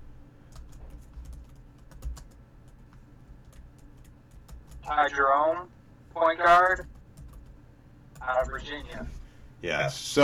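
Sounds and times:
typing on a computer keyboard: 0.5 - 4.9, 6.7 - 7.6
speech: 4.9 - 6.8, 8.4 - 10.2.

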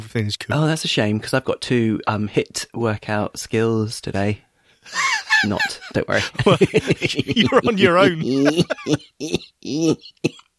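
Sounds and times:
speech: 0.1 - 10.4
laughter: 4.9 - 10.3
throaty rasping cough: 7.4 - 10.5.

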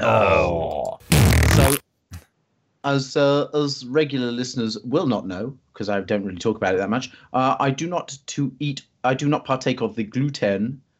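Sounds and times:
speech: 0.0 - 0.6, 2.8 - 10.8
farting: 0.9 - 2.2.

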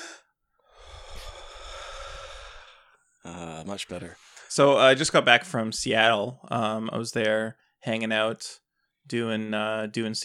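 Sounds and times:
brief breathy puff: 0.0 - 3.0
deep breath drawn in as a long airy inhale: 0.0 - 3.2, 3.9 - 4.9
speech: 3.6 - 10.2.

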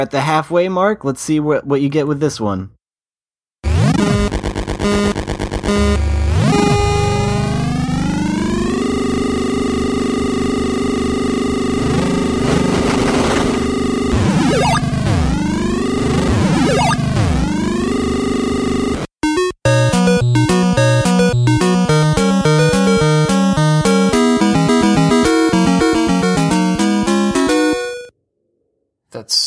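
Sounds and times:
speech: 0.0 - 2.8
bouncy choppy 8-bit video game tune: 3.6 - 28.1
buzzy chiptune engine tones like revving dirt bikes in a retro motocross video game: 3.6 - 28.1
synthesized video game sound effects: 3.6 - 28.1.

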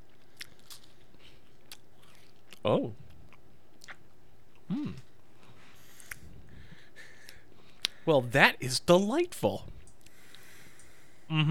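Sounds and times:
chewing a crunchy wafer cookie: 0.0 - 6.3
speech: 2.6 - 3.1, 8.1 - 9.8.

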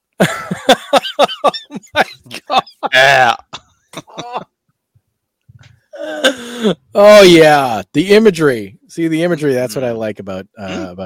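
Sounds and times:
speech: 0.2 - 1.6, 6.6 - 11.0
laughter: 0.2 - 3.4
throaty coughing: 2.2 - 4.5, 6.0 - 6.5, 10.6 - 11.0.

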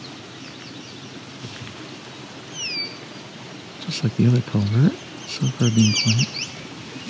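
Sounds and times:
steady outdoor hiss: 0.0 - 7.0
eastern kingbird call: 2.5 - 3.0, 4.5 - 7.0
speech: 3.9 - 6.5.

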